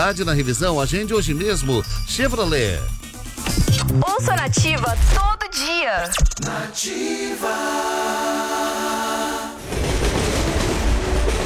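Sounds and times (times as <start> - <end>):
speech: 0.0 - 9.2
train running on rails: 9.6 - 11.4.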